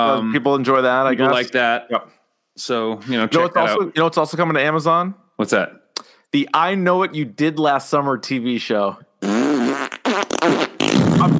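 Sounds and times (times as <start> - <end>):
speech: 0.0 - 9.7
wet sputtering raspberry fart noises blown by mouth into a mic: 9.2 - 11.3.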